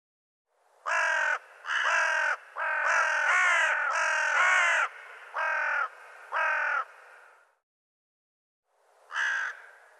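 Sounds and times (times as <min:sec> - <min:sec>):
bird giving harsh rasping calls: 0:00.9 - 0:06.9, 0:09.1 - 0:09.8.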